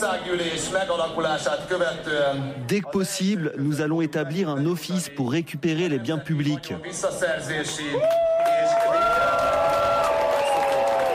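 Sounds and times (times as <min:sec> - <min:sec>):
speech: 0:00.1 - 0:08.2
large crowd cheering and shouting: 0:08.0 - 0:11.1.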